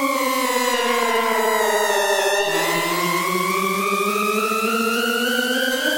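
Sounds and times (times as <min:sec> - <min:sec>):
harrowing alarm: 0:00.1 - 0:05.8.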